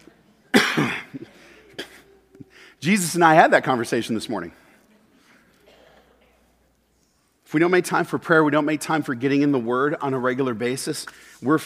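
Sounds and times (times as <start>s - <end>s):
harsh raspy coughing fit: 0.5s - 2.2s, 5.6s - 6.3s
speech: 2.8s - 4.6s, 7.5s - 11.6s.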